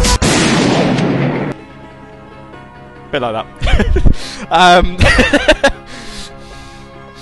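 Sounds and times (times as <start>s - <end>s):
booming gunshot sound effect with sharp cracks over a rumbling wash: 0.2s - 1.6s
speech: 3.1s - 5.8s
laughter: 3.6s - 4.1s, 4.8s - 5.9s.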